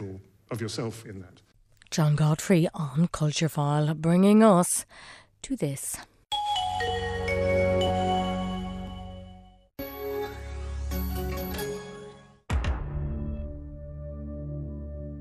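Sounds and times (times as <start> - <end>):
speech: 0.5 - 6.1
swelling computer startup chord: 6.3 - 12.2.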